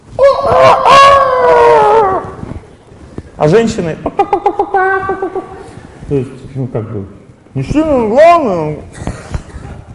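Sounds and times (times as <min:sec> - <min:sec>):
person imitating a rooster's cock-a-doodle-doo: 0:00.2 - 0:02.4
speech: 0:03.4 - 0:04.4, 0:06.1 - 0:09.0.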